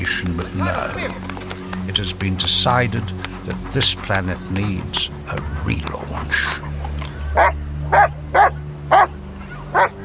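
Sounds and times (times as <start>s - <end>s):
speech: 0.0s - 6.7s
dog barking: 7.4s - 9.1s.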